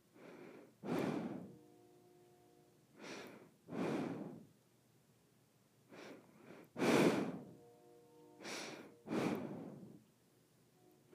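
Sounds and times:
faint steady hum: 0:00.0 - 0:11.1
nose breathing: 0:00.1 - 0:01.6, 0:03.0 - 0:04.5, 0:05.9 - 0:07.6, 0:08.4 - 0:10.1
short sniffs: 0:00.2 - 0:01.6, 0:03.0 - 0:04.5, 0:05.9 - 0:07.6, 0:08.4 - 0:10.0.

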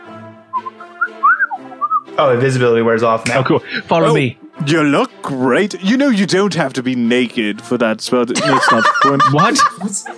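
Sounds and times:
person whistling short rising notes: 0:00.5 - 0:02.1
speech: 0:02.2 - 0:10.1
laughter: 0:08.3 - 0:10.1.

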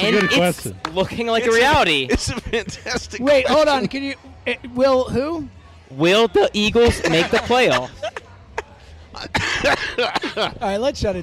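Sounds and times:
speech: 0:00.0 - 0:08.2, 0:09.2 - 0:11.2
laughter: 0:02.0 - 0:04.0, 0:06.8 - 0:10.6
person coughing: 0:09.3 - 0:10.4.

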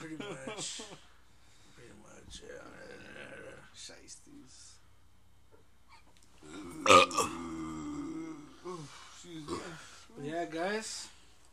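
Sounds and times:
speech: 0:00.5 - 0:01.1, 0:08.7 - 0:11.1
loud drawn-out burp: 0:06.4 - 0:08.6.

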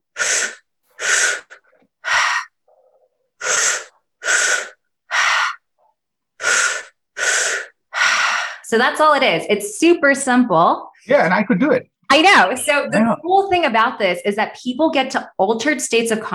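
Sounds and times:
person breathing through the mouth in a belly-then-chest-then-release exercise: 0:00.1 - 0:05.7, 0:06.4 - 0:08.7
speech: 0:08.7 - 0:16.3.

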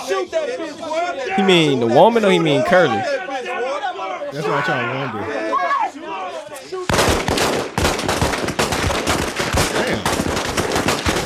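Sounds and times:
speech: 0:00.1 - 0:03.2, 0:04.3 - 0:05.7
laughter: 0:04.3 - 0:05.6, 0:09.6 - 0:10.2
rapid gunfire: 0:06.9 - 0:11.2.

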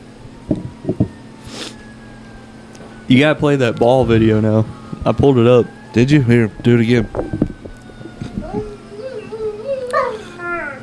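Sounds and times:
speech: 0:03.1 - 0:07.4
dog howling and whimpering: 0:04.0 - 0:10.8.

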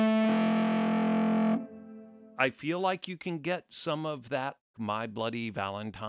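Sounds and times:
heavily overdriven electric guitar chord through double overdrive and reverb pedal: 0:00.0 - 0:02.3
speech: 0:02.4 - 0:06.0.

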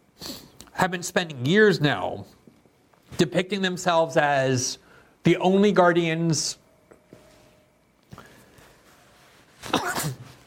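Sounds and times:
hiss: 0:00.0 - 0:10.4
speech: 0:00.8 - 0:02.4, 0:03.2 - 0:06.6
sneeze: 0:09.6 - 0:10.4.

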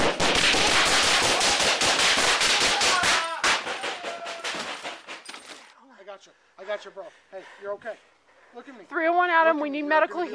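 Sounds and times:
gunfire from officers shooting back at a gunman inside an apartment complex: 0:00.0 - 0:05.3
speech: 0:07.6 - 0:10.3.

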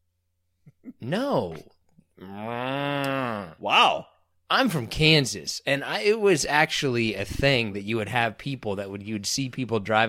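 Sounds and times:
person imitating a cow mooing: 0:00.9 - 0:04.0
speech: 0:01.0 - 0:03.0, 0:03.6 - 0:10.0.

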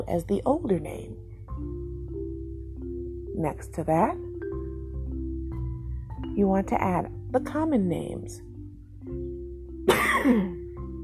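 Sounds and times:
speech: 0:00.0 - 0:01.8, 0:03.4 - 0:04.3, 0:06.4 - 0:08.5, 0:10.2 - 0:10.6
low steady hum: 0:00.0 - 0:11.0
single harsh cough: 0:09.9 - 0:10.7.

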